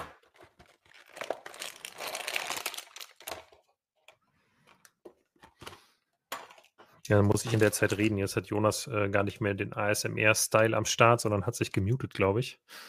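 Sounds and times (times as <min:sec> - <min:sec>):
plastic bags from a LEGO minifigure pack crinkling as torn open: 0:00.2 - 0:03.8, 0:07.3 - 0:08.2
speech: 0:07.1 - 0:12.8.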